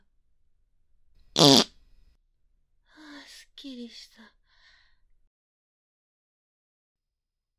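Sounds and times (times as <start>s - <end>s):
fart in a closed room: 1.4s - 1.7s
speech: 3.6s - 4.4s.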